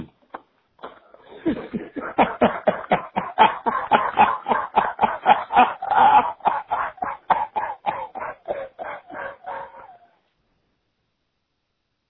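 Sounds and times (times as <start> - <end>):
person laughing on a voicemail: 1.2 - 10.0.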